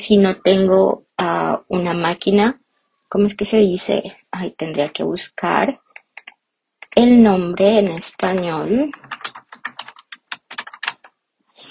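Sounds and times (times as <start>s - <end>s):
speech: 0.0s - 5.8s, 6.9s - 9.2s
typing on a computer keyboard: 5.9s - 7.0s, 7.8s - 11.1s.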